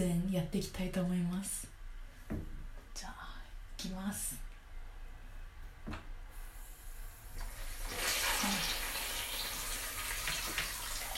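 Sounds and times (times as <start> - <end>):
speech: 0.0 - 1.7, 2.3 - 4.5, 5.8 - 6.1
shower running at a gentle low flow: 6.4 - 11.1.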